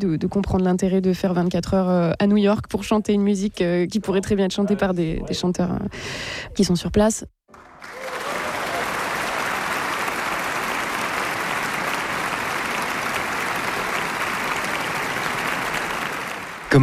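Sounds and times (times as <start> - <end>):
speech: 0.0 - 7.7
large audience applauding: 7.5 - 16.8.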